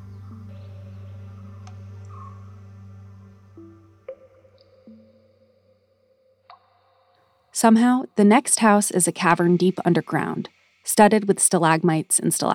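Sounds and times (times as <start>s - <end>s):
water drops falling from fog on a glass greenhouse ceiling: 4.1s - 5.2s
speech: 7.6s - 12.5s.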